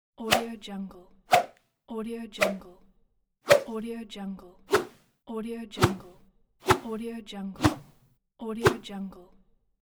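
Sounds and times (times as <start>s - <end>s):
fast whip swish: 0.3s - 0.5s, 1.3s - 1.5s, 2.4s - 2.6s, 3.5s - 3.8s, 4.7s - 5.0s, 5.8s - 6.9s, 7.6s - 8.0s, 8.6s - 8.9s.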